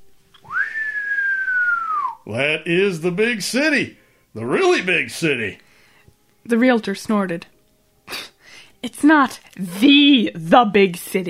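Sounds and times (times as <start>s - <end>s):
cowboy whistling: 0.4s - 2.2s
speech: 2.3s - 5.6s, 6.4s - 7.5s, 8.8s - 11.2s.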